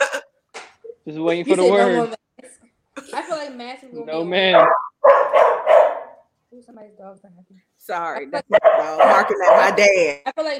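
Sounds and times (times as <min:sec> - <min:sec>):
speech: 0:01.0 - 0:02.2, 0:03.0 - 0:05.4, 0:06.5 - 0:10.5
dog barking and whining: 0:04.4 - 0:06.2, 0:08.5 - 0:09.9.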